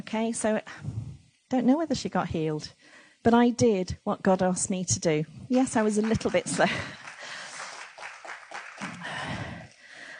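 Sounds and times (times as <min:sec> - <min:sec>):
speech: 0:00.1 - 0:07.0
audience clapping: 0:05.5 - 0:09.9.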